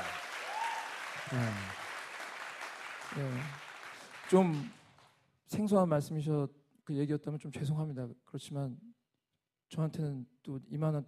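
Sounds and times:
audience applause: 0.0s - 5.1s
speech: 1.3s - 1.8s, 3.1s - 3.6s, 4.3s - 4.8s, 5.5s - 9.0s, 9.7s - 11.0s.

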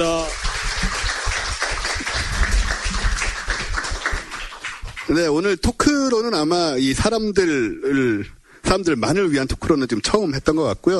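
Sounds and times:
audience applauding a guest speaker at the end of a talk: 0.0s - 5.3s
speech: 5.1s - 10.9s.

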